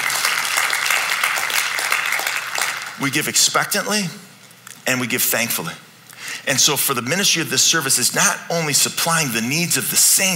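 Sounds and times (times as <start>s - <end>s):
room full of people clapping: 0.0s - 3.0s
speech: 3.0s - 10.3s.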